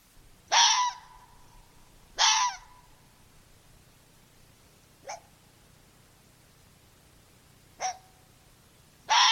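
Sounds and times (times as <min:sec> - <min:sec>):
quiet hiss: 0:00.0 - 0:09.3
red fox barking yelps: 0:00.5 - 0:01.4, 0:02.2 - 0:02.9, 0:05.0 - 0:05.3, 0:07.8 - 0:08.2, 0:09.1 - 0:09.3.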